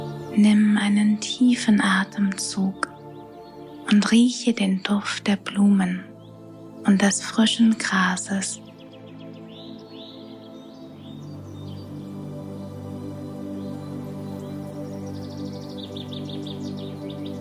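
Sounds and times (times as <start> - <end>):
birds chirping and twittering: 0.0 - 17.3
speech: 0.4 - 2.9, 3.9 - 6.1, 6.8 - 8.6.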